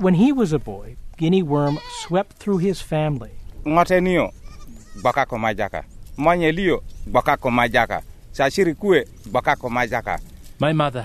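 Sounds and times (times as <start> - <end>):
speech: 0.0 - 4.4, 5.0 - 11.0
goats bleating in a village of mud and thatch huts: 1.6 - 2.3, 4.2 - 5.4.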